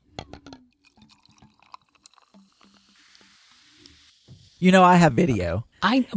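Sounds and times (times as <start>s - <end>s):
sharp drips and clinks: 0.8s - 3.0s
fizzy liquid pouring and bubbling: 0.8s - 4.7s
speech: 4.6s - 6.1s.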